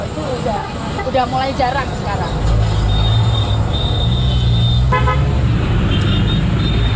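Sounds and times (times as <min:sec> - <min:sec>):
city bus engine rumbling at a bus stop: 0:00.0 - 0:06.9
speech: 0:00.5 - 0:02.4
city bus horn honk: 0:02.8 - 0:06.9.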